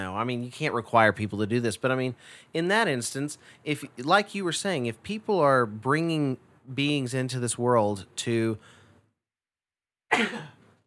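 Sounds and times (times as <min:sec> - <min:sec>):
speech: 0:00.2 - 0:08.8, 0:10.1 - 0:10.6
person sneezing: 0:10.1 - 0:10.7.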